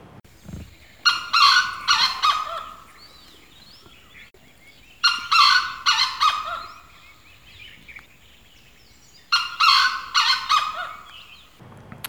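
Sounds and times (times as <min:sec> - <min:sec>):
grey jungle fowl crowing: 0:00.7 - 0:08.0, 0:09.2 - 0:11.6.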